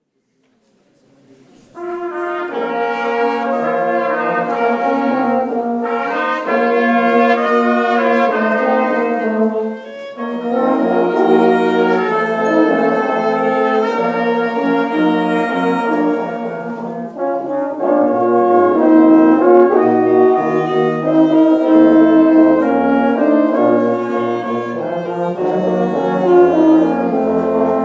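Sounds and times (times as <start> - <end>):
brass band playing: 1.8 - 27.8.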